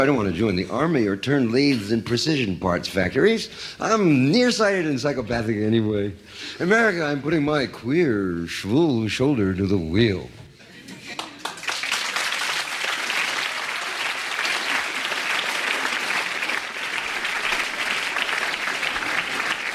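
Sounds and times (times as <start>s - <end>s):
speech: 0.0s - 10.4s
audience applause after a poetry performance: 11.1s - 19.7s.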